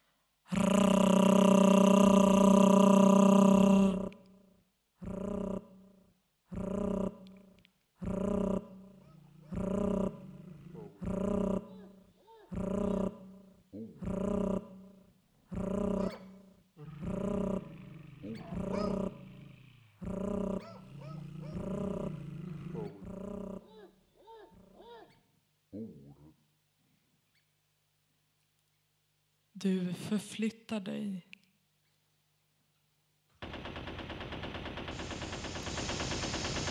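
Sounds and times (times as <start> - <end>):
voice rolling a drawn-out R like a dog growl: 0.5 - 4.2, 5.0 - 5.8, 6.5 - 7.4, 8.0 - 25.0
speech: 29.6 - 31.3.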